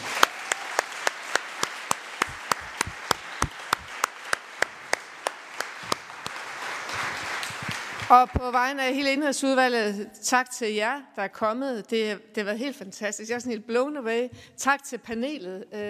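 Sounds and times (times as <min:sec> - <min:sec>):
crowd applauding at the end of a committee hearing: 0:00.0 - 0:08.4
one pair of hands clapping a quick even rhythm: 0:00.0 - 0:08.5
speech: 0:08.1 - 0:15.8.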